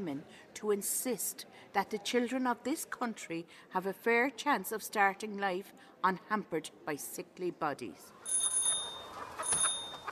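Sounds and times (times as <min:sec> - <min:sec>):
speech: 0:00.0 - 0:08.5
small bicycle bell ringing: 0:08.3 - 0:10.1.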